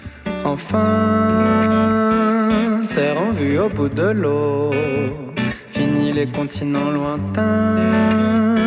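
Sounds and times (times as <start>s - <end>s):
French pop song with singing: 0.3s - 8.6s
speech: 3.7s - 5.3s, 6.2s - 8.5s.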